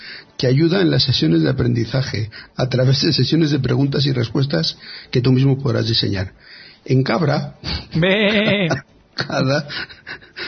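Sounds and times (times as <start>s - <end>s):
speech: 0.4s - 10.4s
human voice imitating a sheep bleat: 8.0s - 8.8s.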